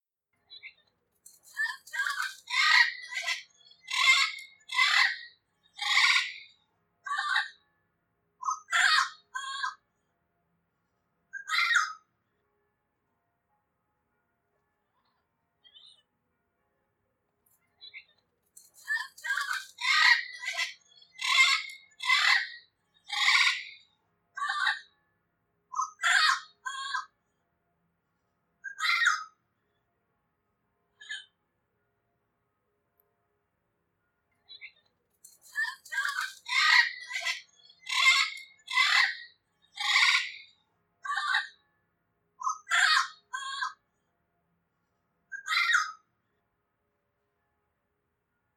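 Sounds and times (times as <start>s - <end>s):
yellow-headed parrot calling: 1.6s - 6.4s, 8.4s - 9.8s, 11.4s - 12.0s, 18.8s - 23.8s, 25.8s - 27.1s, 28.6s - 29.3s, 35.4s - 41.5s, 42.4s - 43.8s, 45.3s - 46.0s.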